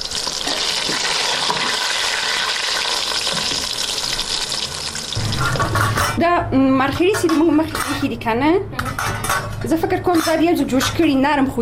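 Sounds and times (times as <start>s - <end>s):
mushrooms and onions sizzling while browning in a pan: 0.0s - 5.5s
speech: 6.2s - 8.8s, 9.6s - 11.6s.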